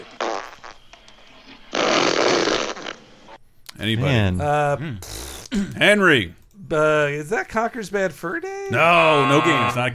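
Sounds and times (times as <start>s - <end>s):
loud raspy fart sounds: 0.0s - 0.8s, 1.7s - 3.4s, 5.0s - 5.5s
speech: 3.8s - 9.9s.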